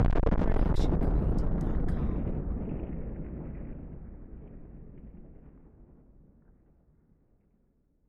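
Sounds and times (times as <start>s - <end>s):
distorted nuclear explosion: 0.0s - 5.7s.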